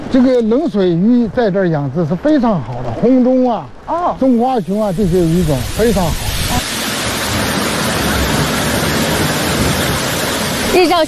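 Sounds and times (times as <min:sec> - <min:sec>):
speech: 0:00.1 - 0:06.6, 0:10.8 - 0:11.0
mountain-stream waterfall first-tier fall rushing: 0:03.1 - 0:11.0.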